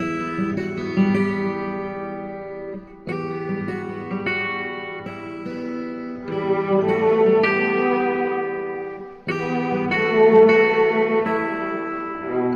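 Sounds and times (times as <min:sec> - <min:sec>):
sad guitar loop: 0:00.0 - 0:12.5.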